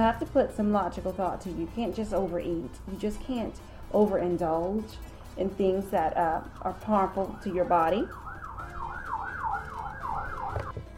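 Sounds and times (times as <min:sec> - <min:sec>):
speech: 0:00.0 - 0:08.2
ambulance siren wailing in rising-and-falling sweeps: 0:07.0 - 0:10.7.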